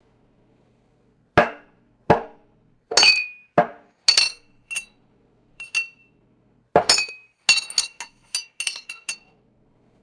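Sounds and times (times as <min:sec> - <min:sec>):
dainty ceramic teacup clinks and impacts: 0:02.9 - 0:04.8, 0:05.6 - 0:05.9, 0:06.8 - 0:09.2.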